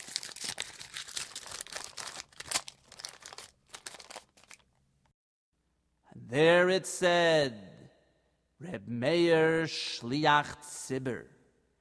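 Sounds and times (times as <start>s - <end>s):
folded paper slip being unfolded: 0.0s - 4.8s
speech: 6.3s - 7.7s, 8.6s - 11.4s.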